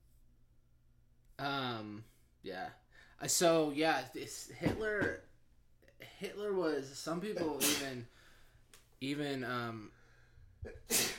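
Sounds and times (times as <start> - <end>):
speech: 1.4 - 5.3, 6.0 - 8.2, 9.0 - 10.0, 10.6 - 11.1
sneeze: 7.6 - 8.0, 10.7 - 11.1.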